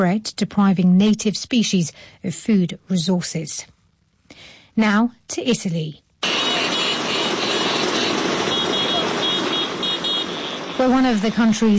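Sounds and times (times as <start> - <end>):
speech: 0.0 - 3.7, 4.4 - 6.0, 10.8 - 11.7
many small Vespa scooter engines buzzing and revving: 6.2 - 11.7.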